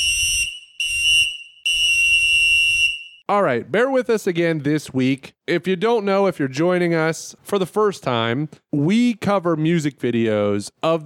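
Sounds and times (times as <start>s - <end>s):
loud shrill whistle blasts: 0.0s - 3.3s
speech: 3.3s - 11.0s.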